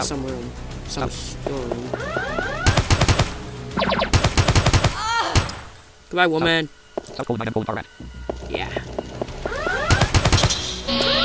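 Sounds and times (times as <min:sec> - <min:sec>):
speech: 0:00.0 - 0:02.4, 0:06.1 - 0:08.8
mini pistol gunfire in a video game: 0:02.6 - 0:05.6, 0:09.8 - 0:10.7.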